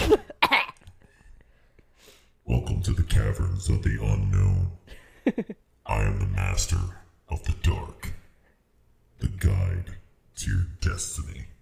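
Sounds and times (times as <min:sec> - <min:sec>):
person coughing: 0:00.0 - 0:00.8
speech: 0:02.5 - 0:08.1, 0:09.2 - 0:11.5.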